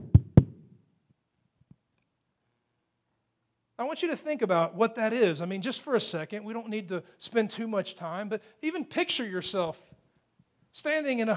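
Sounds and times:
knocking on a wooden door: 0.0s - 0.6s
speech: 3.8s - 10.0s, 10.8s - 11.3s.

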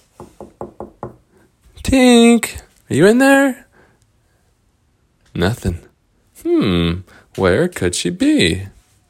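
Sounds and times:
knocks on a small wooden door: 0.2s - 1.2s
speech: 1.9s - 3.6s, 5.4s - 5.8s, 6.4s - 8.8s.

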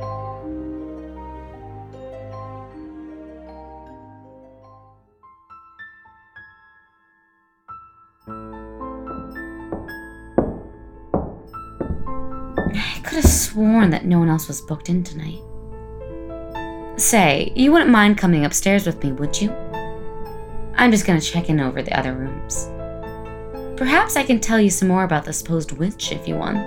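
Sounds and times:
soft hollow knuckle knocks on a wall: 9.2s - 13.8s
speech: 12.7s - 15.5s, 17.0s - 19.6s, 20.8s - 22.8s, 23.8s - 26.6s.

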